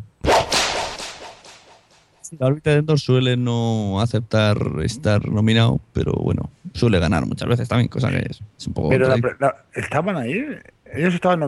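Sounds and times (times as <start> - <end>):
sharp whip crack with tail: 0.2 - 2.1
speech: 2.3 - 11.4.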